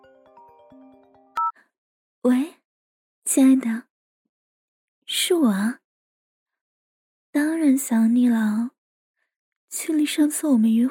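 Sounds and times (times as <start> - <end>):
mobile phone ringtone: 0.0 - 1.5
speech: 2.2 - 2.6, 3.4 - 3.9, 5.1 - 5.8, 7.4 - 8.8, 9.7 - 10.8.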